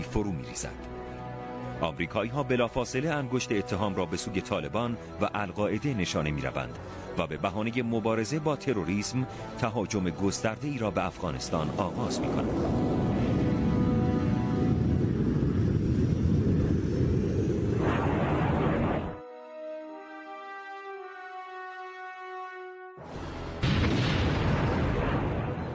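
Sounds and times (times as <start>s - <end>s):
speech: 0.1s - 1.0s, 1.8s - 13.0s
aircraft engine droning: 11.2s - 19.2s
high steady aircraft engine whine: 11.9s - 18.2s
American aircraft bombing explosions in Afghanistan: 12.2s - 19.2s, 23.6s - 25.7s.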